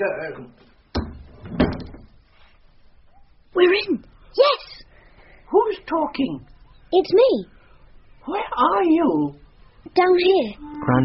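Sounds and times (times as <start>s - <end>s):
speech: 0.0s - 1.6s, 3.6s - 4.7s, 5.5s - 7.6s, 8.2s - 9.4s, 10.0s - 11.0s
heavy door thud and brief rattle: 1.0s - 2.1s.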